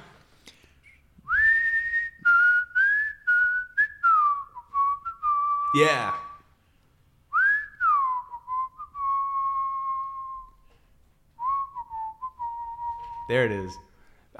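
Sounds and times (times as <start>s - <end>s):
person whistling a bouncy melody: 0.8s - 6.6s, 7.3s - 10.7s, 11.4s - 13.7s
speech: 5.7s - 6.2s, 13.3s - 13.9s.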